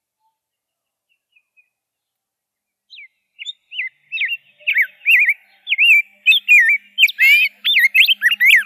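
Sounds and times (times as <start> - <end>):
rose-breasted grosbeak song: 2.9 - 8.6.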